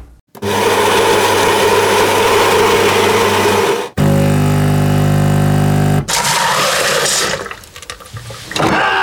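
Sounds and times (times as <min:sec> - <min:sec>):
coffee machine grinding: 0:00.4 - 0:08.8
coffee machine pump humming: 0:04.0 - 0:07.5.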